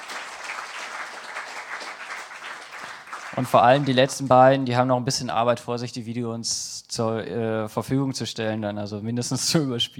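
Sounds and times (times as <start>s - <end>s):
audience applause: 0.0s - 4.4s
speech: 3.3s - 9.9s.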